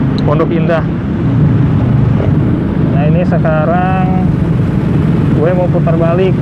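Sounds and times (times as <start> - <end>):
engines of slow congested road traffic rumbling: 0.0 - 6.3
wind-like roar: 0.0 - 6.3
speech: 0.3 - 1.4, 3.0 - 4.3, 5.4 - 6.3.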